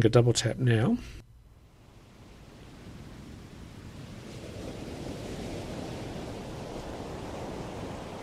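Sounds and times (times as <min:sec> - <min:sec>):
speech: 0:00.0 - 0:01.2
steady ocean surf from a relaxation album: 0:01.6 - 0:08.2.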